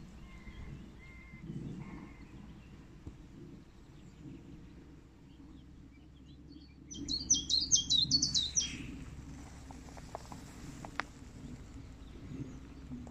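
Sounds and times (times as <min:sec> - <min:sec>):
low steady rumble: 0:00.0 - 0:13.0
willow warbler song of high notes: 0:00.0 - 0:13.0
faint clicks: 0:09.4 - 0:13.0.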